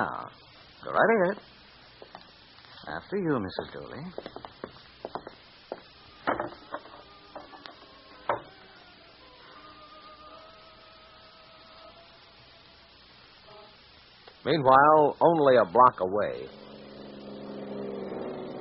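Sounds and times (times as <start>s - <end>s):
speech: 0.0s - 1.6s, 2.8s - 4.6s, 14.4s - 16.6s
woman's footsteps climbing wooden stairs: 4.2s - 5.9s
police car engine droning while slowing down: 16.0s - 18.6s.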